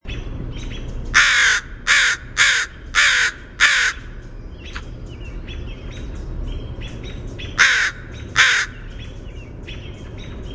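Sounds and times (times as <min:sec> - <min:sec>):
low steady rumble: 0:00.0 - 0:10.5
northern crested caracara giving harsh grating calls: 0:01.1 - 0:04.2, 0:07.5 - 0:08.9.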